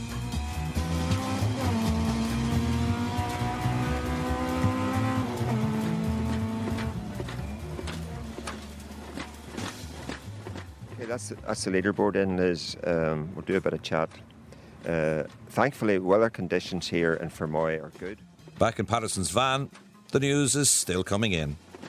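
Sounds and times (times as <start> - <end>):
rally car engine revving hard through gear changes on a gravel stage: 0.0 - 11.0
gravel crunching and tyres scrabbling across loose surface: 5.7 - 20.0, 20.9 - 21.8
speech: 11.1 - 21.6.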